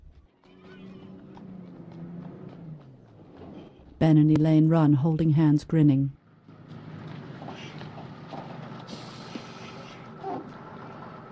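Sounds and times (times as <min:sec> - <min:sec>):
bus pulling up and stopping: 0:00.0 - 0:11.3
bus brake squeal: 0:00.4 - 0:04.0, 0:06.4 - 0:11.3
speech: 0:04.0 - 0:06.2.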